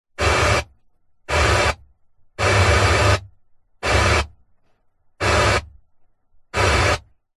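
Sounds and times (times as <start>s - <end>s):
car radio static bursts while pressing through presets inside a Nissan Patrol: 0.2s - 4.4s, 5.2s - 5.9s, 6.5s - 7.3s.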